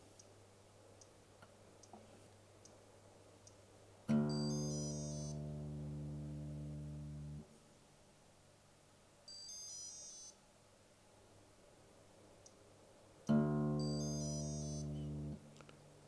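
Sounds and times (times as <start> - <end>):
electronic guitar tuner beeping: 4.1 - 7.4, 13.3 - 15.6.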